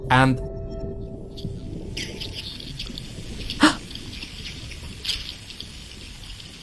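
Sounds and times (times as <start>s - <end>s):
speech: 0.1s - 0.5s, 1.4s - 2.3s
thousands of herring swimming beneath a boat at a fishing trap, hydrophone recording: 1.4s - 6.6s.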